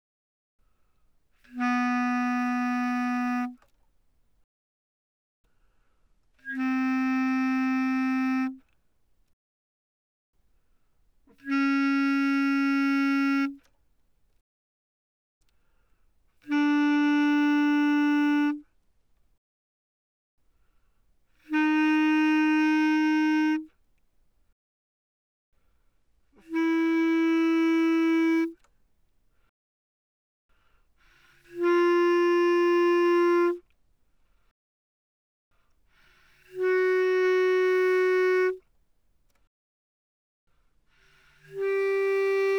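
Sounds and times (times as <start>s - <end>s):
bass clarinet notes played mezzo forte: 1.5s - 3.6s, 6.4s - 8.6s, 11.3s - 13.6s, 16.4s - 18.6s, 21.4s - 23.7s, 26.4s - 28.6s, 31.5s - 33.6s, 36.5s - 38.6s, 41.4s - 42.5s.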